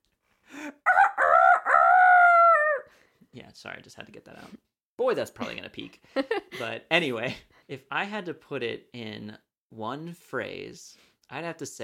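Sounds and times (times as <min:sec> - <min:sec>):
person imitating a rooster crowing: 0:00.5 - 0:02.9
speech: 0:03.4 - 0:11.8.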